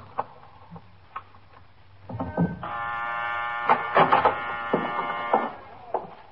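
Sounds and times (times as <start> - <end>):
door buzzer unlocking downstairs door: 2.2 - 6.0.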